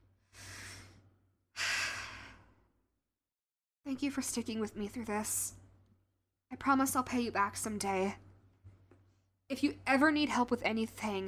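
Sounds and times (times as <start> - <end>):
slow deep breathing: 0.2 - 2.8
speech: 3.9 - 5.6, 6.6 - 8.2, 9.5 - 11.2.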